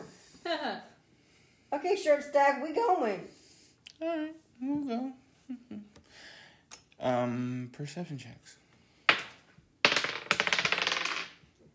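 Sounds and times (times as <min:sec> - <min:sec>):
speech: 0:01.9 - 0:03.4, 0:04.0 - 0:06.3, 0:07.0 - 0:08.6
dice rolling on a hard table during perception checks: 0:09.1 - 0:11.4.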